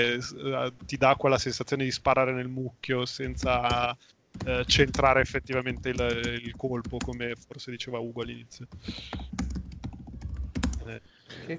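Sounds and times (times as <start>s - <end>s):
speech: 0.0s - 9.5s, 10.9s - 11.5s
typing on a computer keyboard: 3.2s - 7.3s, 8.7s - 10.9s.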